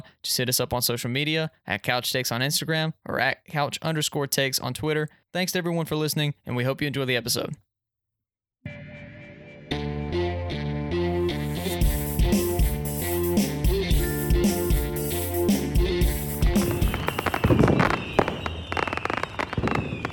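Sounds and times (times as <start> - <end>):
speech: 0.3 - 7.7
loud music: 8.7 - 17.8
Fourth of July fireworks exploding: 16.4 - 20.1.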